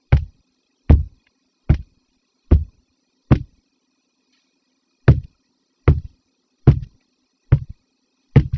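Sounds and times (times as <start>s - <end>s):
heavy footfalls: 0.1s - 0.3s, 0.9s - 1.9s, 2.5s - 2.7s, 3.3s - 3.5s, 5.1s - 5.3s, 5.9s - 6.1s, 6.7s - 6.9s, 7.5s - 7.8s, 8.4s - 8.5s.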